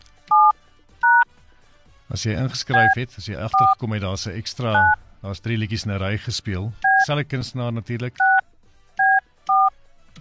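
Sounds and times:
touch-tone phone keypad beeps dialing a number: 0:00.3 - 0:01.2, 0:02.7 - 0:03.0, 0:04.7 - 0:05.0, 0:06.8 - 0:07.1, 0:08.2 - 0:08.4, 0:09.0 - 0:09.7
speech: 0:02.1 - 0:08.4.

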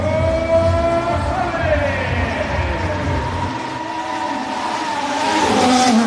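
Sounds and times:
racing cars roaring and revving through a street: 0:00.0 - 0:06.0.

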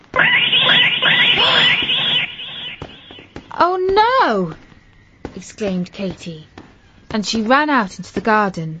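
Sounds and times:
cat screeching loudly on a roof: 0:00.1 - 0:03.1
speech: 0:03.6 - 0:04.6, 0:05.4 - 0:06.5, 0:07.1 - 0:08.7.

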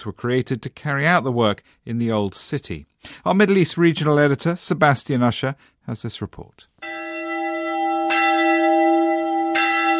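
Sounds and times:
speech: 0:00.0 - 0:06.9
large church bell tolling: 0:06.8 - 0:09.9.

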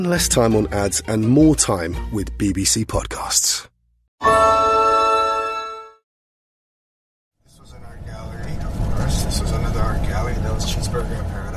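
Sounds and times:
speech: 0:00.0 - 0:04.5
flatbed truck road noise: 0:07.4 - 0:11.5
flatbed truck engine rumble heard from inside the cab: 0:07.5 - 0:11.5.

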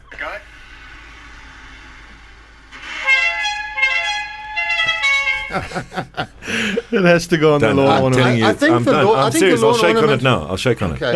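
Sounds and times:
rumble: 0:00.0 - 0:10.8
bus hooter horn blasts: 0:02.8 - 0:05.9
laughter: 0:05.3 - 0:10.4
speech: 0:05.5 - 0:11.1.

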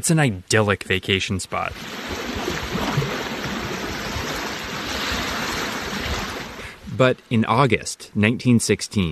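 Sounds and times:
speech: 0:00.0 - 0:02.2, 0:07.0 - 0:09.1
small lake waves of Issyk-Kul lapping a sandy shore in summer: 0:01.6 - 0:07.3.

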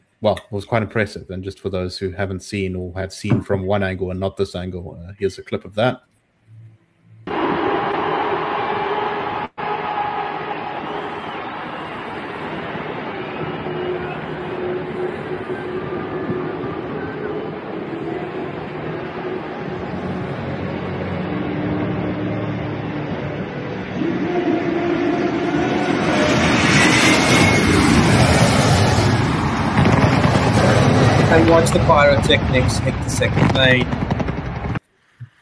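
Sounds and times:
speech: 0:00.2 - 0:06.1, 0:31.6 - 0:34.1
hum of a large stadium crowd: 0:07.3 - 0:34.8
low-flying passenger jet roaring overhead above a stadium: 0:07.3 - 0:34.8.

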